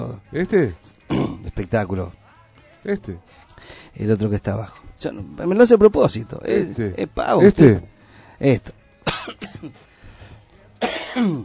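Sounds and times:
speech: 0.0 - 0.9, 1.6 - 2.2, 2.8 - 9.9, 10.8 - 11.4
person coughing harshly: 1.1 - 1.5, 9.0 - 9.8, 10.8 - 11.4
soft breaths: 3.2 - 4.0, 7.9 - 8.4, 9.8 - 10.7.

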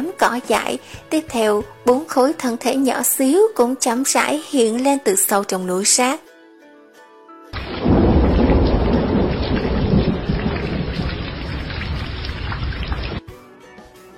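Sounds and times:
speech: 0.2 - 6.3
heavy rain in a thunderstorm: 7.6 - 13.2
loud rumbling thunder: 7.6 - 13.2.

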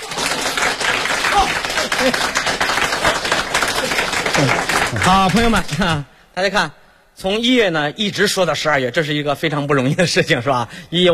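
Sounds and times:
stage audience applause during a comic duo's performance: 0.0 - 5.9
speech: 5.0 - 11.1.

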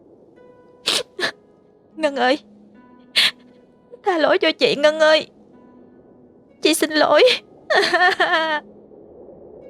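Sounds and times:
speech: 2.0 - 2.5, 4.0 - 5.4, 6.6 - 8.7
woman sobbing mournfully while kneeling and begging forgiveness: 7.2 - 8.6.

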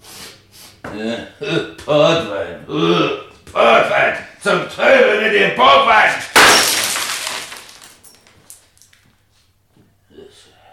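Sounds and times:
speech: 1.0 - 6.3
window pane glass shattering: 6.3 - 8.6
falling glass shards tinkling: 6.4 - 8.9.

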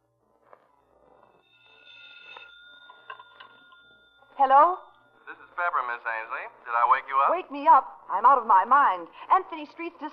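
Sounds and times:
telephone bell ringing: 1.0 - 5.8
speech: 4.4 - 4.9, 6.8 - 10.1.

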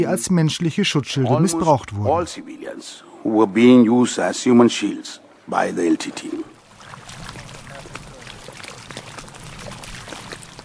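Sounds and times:
speech: 0.0 - 6.5
lagoon water lapping against the shore in northern Sri Lanka: 3.2 - 10.6.

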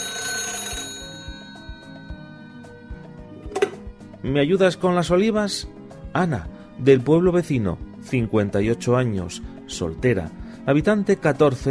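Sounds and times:
telephone ringing with an incoming call: 0.0 - 3.0
speech: 4.2 - 11.6.

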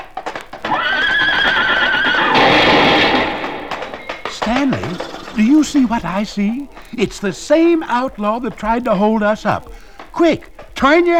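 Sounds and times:
horse hooves clip-clopping into a saloon: 0.0 - 11.1
horse neighing as it is ridden into a saloon: 0.6 - 8.0
speech: 5.6 - 11.1.

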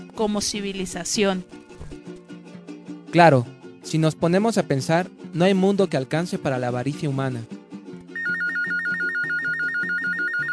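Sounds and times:
speech: 0.2 - 1.6, 3.1 - 7.6
telephone ringing with an incoming call: 8.1 - 10.5.

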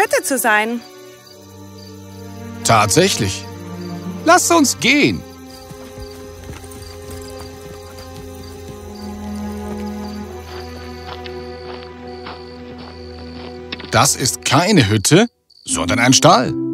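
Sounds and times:
speech: 0.0 - 1.0, 2.7 - 3.5, 4.2 - 5.3, 14.0 - 16.7
sustained tonal backdrop: 0.0 - 16.7
horses' hooves clip-clopping at a walking pace: 4.8 - 14.2.

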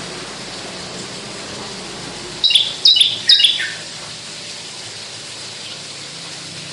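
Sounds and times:
Javan bush lark singing in skyward song flight: 2.4 - 3.8.

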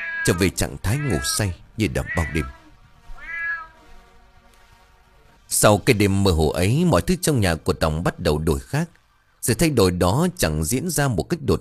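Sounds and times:
cat meowing outside: 0.0 - 3.8
speech: 0.2 - 2.6, 5.6 - 11.5.

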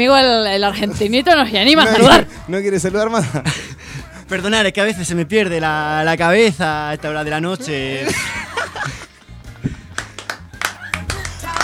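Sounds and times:
speech: 0.0 - 9.0
audience chuckling and laughing: 8.0 - 9.1, 10.7 - 11.5
audience at a live show clapping: 9.8 - 11.6.

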